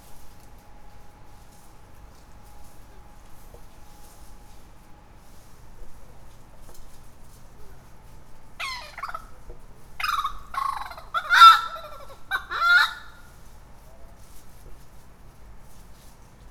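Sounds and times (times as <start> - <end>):
bush turkey calling outdoors: 8.6 - 9.4, 10.0 - 13.2.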